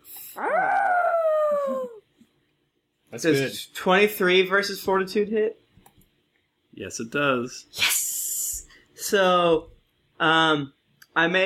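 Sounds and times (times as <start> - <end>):
person's voice imitating the howl of a tempest: 0.2 - 2.0
speech: 3.2 - 5.6, 6.8 - 7.9, 9.1 - 11.4.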